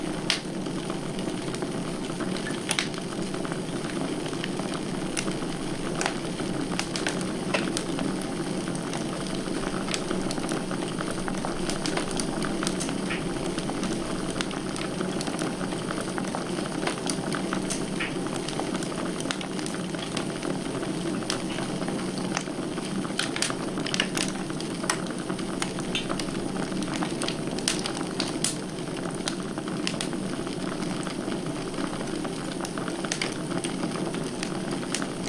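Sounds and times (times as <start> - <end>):
wood fire burning with a low dense roar: 0.0 - 35.2.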